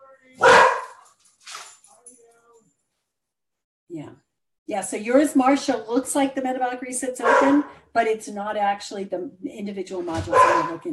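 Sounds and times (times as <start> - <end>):
female pet dog barking excitedly as its owner comes home: 0.4 - 1.0, 7.2 - 7.8, 10.2 - 10.9
speech: 3.9 - 10.9.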